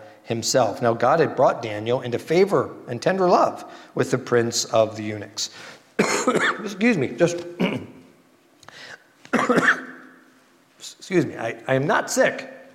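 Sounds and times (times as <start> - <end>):
speech: 0.3 - 8.0, 11.1 - 12.5
harsh coughs: 6.0 - 6.7, 7.6 - 8.0, 9.3 - 10.0.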